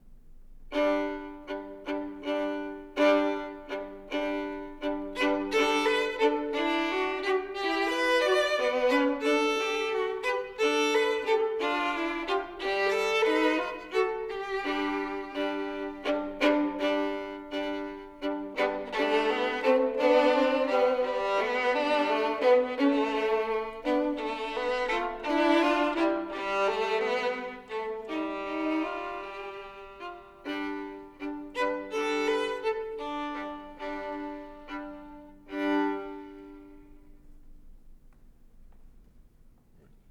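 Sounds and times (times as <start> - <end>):
two violins playing a minuet: 0.7 - 37.4.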